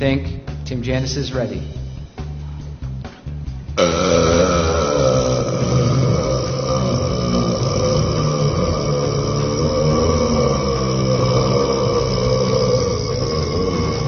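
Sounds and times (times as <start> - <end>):
speech: 0.0 - 1.8
long loud deep gravelly burp: 3.8 - 14.0.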